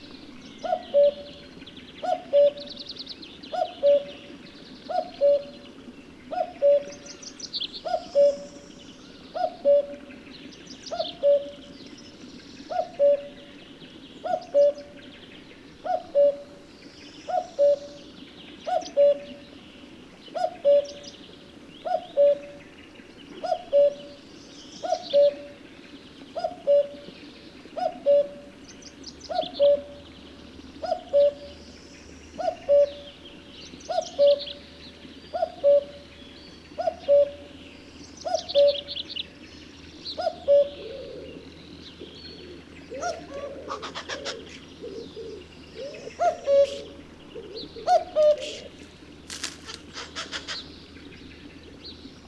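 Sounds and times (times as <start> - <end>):
cuckoo calling: 0.0 - 2.8, 3.5 - 4.3, 4.9 - 5.6, 6.3 - 7.2, 7.8 - 8.7, 9.3 - 10.0, 10.9 - 11.7, 12.7 - 13.5, 14.2 - 15.0, 15.8 - 16.6, 17.2 - 19.4, 20.4 - 21.0, 21.8 - 22.6, 23.4 - 24.2, 24.8 - 25.6, 26.4 - 28.6, 29.3 - 30.2, 30.8 - 31.6, 32.4 - 34.7, 35.3 - 36.1, 36.7 - 37.6, 38.2 - 39.1, 40.1 - 50.7.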